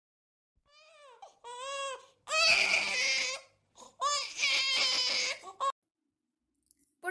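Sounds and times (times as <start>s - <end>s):
baby girl crying: 0.7s - 5.8s.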